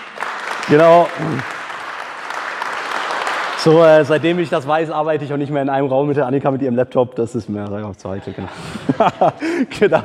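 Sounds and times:
audience applause: 0.0s - 4.9s
speech: 0.7s - 1.6s, 3.6s - 10.0s
laughter: 8.1s - 10.0s.

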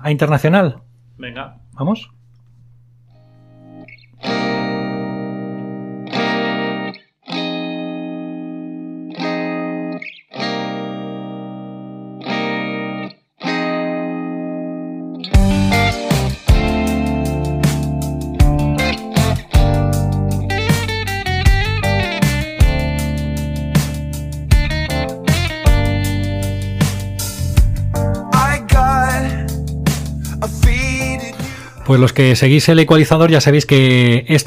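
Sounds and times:
speech: 0.0s - 2.2s, 31.9s - 34.4s
distorted electric guitar chords: 3.2s - 31.8s
rock band with drums playing a driving groove: 4.2s - 7.7s, 15.2s - 31.8s.

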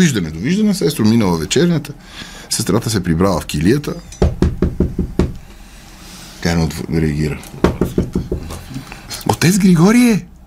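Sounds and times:
speech: 0.0s - 4.2s, 6.4s - 7.6s, 9.4s - 10.3s
firm knocks on a door: 4.2s - 5.4s, 7.6s - 8.7s.

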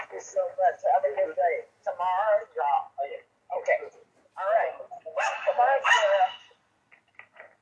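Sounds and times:
speech: 0.2s - 4.7s
dogs barking: 5.2s - 6.5s.

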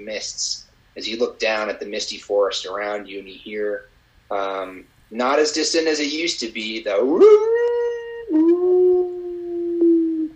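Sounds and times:
speech: 0.0s - 7.5s
group of dire wolves howling in a misty forest at pre-dawn: 7.0s - 10.3s.

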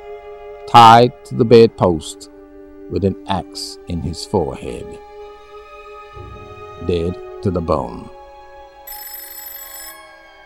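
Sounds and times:
speech: 0.7s - 2.3s, 2.9s - 5.1s, 6.8s - 8.2s
telephone bell ringing: 8.9s - 10.4s.

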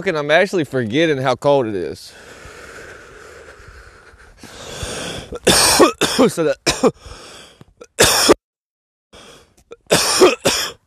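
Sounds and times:
speech: 0.0s - 2.4s, 5.3s - 7.4s, 8.0s - 8.3s
softer wheezy breath: 2.1s - 5.4s, 7.0s - 7.6s, 9.2s - 9.6s
person coughing after inhaling smoke: 5.4s - 7.0s, 7.9s - 8.4s, 9.7s - 10.8s.

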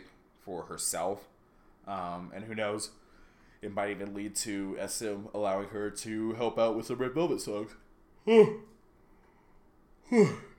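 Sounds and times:
speech: 0.4s - 3.0s, 3.6s - 8.7s, 10.1s - 10.5s
person yawning: 8.2s - 8.7s, 10.0s - 10.5s.

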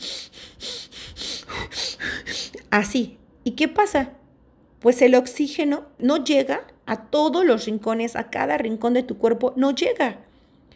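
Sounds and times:
person demonstrating panic-attack breathing: 0.0s - 2.6s
speech: 2.7s - 4.2s, 4.8s - 10.3s.

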